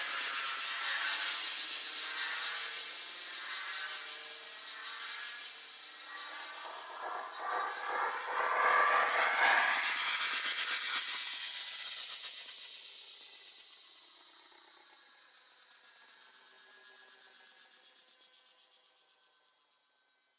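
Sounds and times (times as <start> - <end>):
tension sizzle: 0.2 - 11.4.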